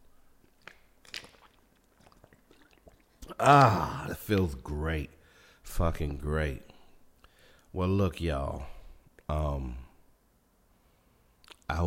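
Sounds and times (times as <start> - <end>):
person sipping water: 0.0 - 4.1
speech: 3.4 - 6.7, 7.7 - 8.7, 9.3 - 9.8.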